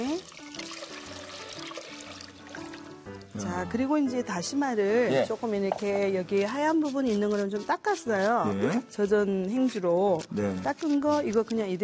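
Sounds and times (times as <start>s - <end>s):
water pouring into a pot over stir-fried anchovies for broth: 0.0s - 3.4s
speech: 3.4s - 11.8s.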